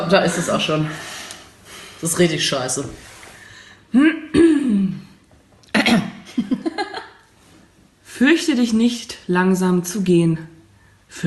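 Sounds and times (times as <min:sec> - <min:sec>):
speech: 0:00.1 - 0:01.2, 0:02.0 - 0:03.1, 0:03.9 - 0:04.4, 0:08.2 - 0:10.5
person clearing throat: 0:04.2 - 0:06.2.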